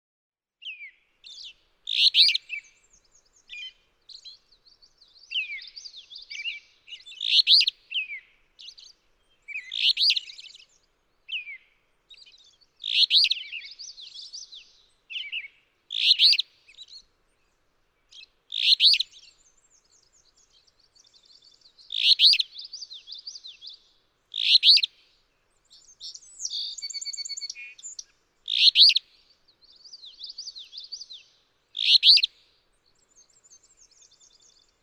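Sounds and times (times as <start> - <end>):
Alder Flycatcher calling: 1.2 - 2.8, 5.2 - 8.9, 9.5 - 11.4, 12.2 - 16.9, 18.1 - 24.9, 25.7 - 32.4.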